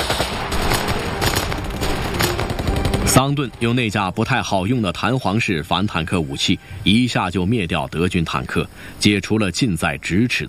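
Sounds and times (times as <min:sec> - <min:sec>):
Sten submachine gun firing in wartime combat at German soldiers: 0:00.0 - 0:03.8
speech: 0:03.1 - 0:10.4.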